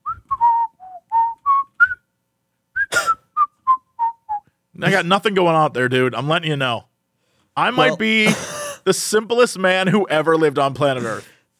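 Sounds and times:
person whistling a tune: 0.0 - 2.0, 2.8 - 4.5
speech: 4.8 - 6.9, 7.6 - 11.3.

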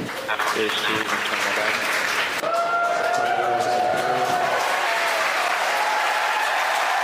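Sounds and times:
crowd applauding as a Falcon 9 first stage lands on a drone ship: 0.1 - 7.0
crowd cheering with excited shouts and whoops: 2.4 - 7.0.

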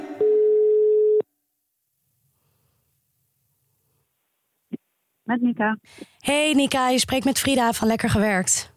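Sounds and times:
electronic phone ringing tone: 0.2 - 1.2
speech: 5.3 - 8.7.

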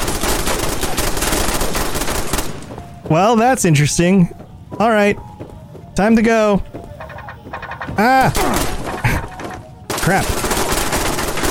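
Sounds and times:
video game automatic gunfire: 0.0 - 2.6, 7.1 - 11.4
speech: 3.1 - 6.8, 8.0 - 8.7, 10.0 - 10.4.

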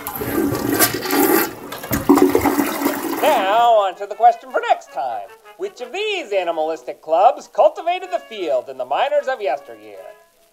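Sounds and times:
toilet flushing with water swirling down the bowl: 0.0 - 3.6
speech: 3.3 - 10.2.

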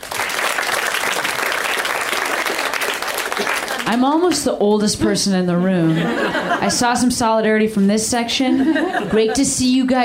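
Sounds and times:
room full of people clapping: 0.0 - 4.4
laughter: 3.4 - 4.0, 5.8 - 7.1, 8.4 - 9.9
speech: 3.9 - 10.0.

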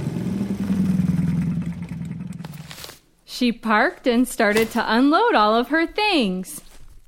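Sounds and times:
small scooter engine puttering: 0.0 - 2.9
speech: 3.3 - 6.6.

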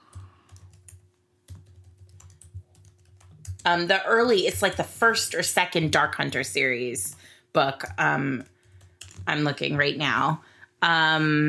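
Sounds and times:
typing on a computer keyboard: 0.0 - 3.7, 7.8 - 9.3
speech: 3.6 - 8.5, 9.3 - 11.4.

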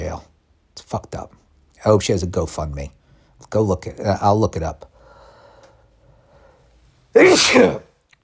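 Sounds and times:
speech: 0.1 - 4.9, 7.2 - 7.9
person sneezing: 7.2 - 7.9.

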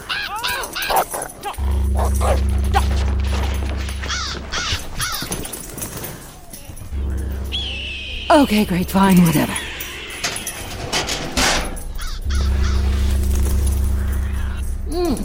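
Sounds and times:
female dog barking with a bird in its mouth: 0.0 - 3.0
low steady hum: 1.5 - 5.8, 6.4 - 15.2
bird squawking in a dog's mouth: 4.0 - 5.6, 6.4 - 8.4, 9.5 - 10.9, 11.9 - 14.6
speech: 8.3 - 9.6.

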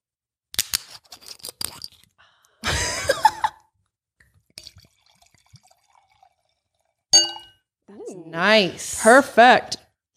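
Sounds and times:
clicks and clinks of handling: 4.6 - 4.9, 7.2 - 7.6
rosé wine being poured into a glass: 4.6 - 7.6
speech: 8.4 - 9.8.

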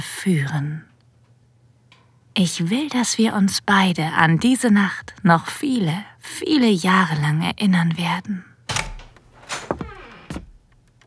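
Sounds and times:
speech: 0.2 - 0.9, 2.4 - 8.5
door opening with a short creak: 8.7 - 11.0
firm footsteps on a hard wooden floor: 8.8 - 11.0.

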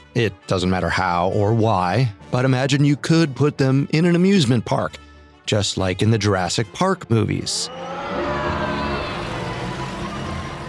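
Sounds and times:
speech: 0.2 - 8.5
road noise: 7.7 - 10.6
Jeep engine rumbling while driving: 8.4 - 10.6.

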